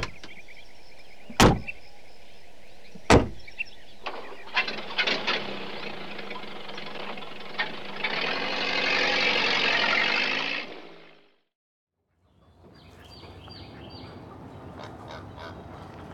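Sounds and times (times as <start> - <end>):
car engine starting and idling: 0.0 - 11.2
car door slams: 1.3 - 1.8, 3.0 - 3.4.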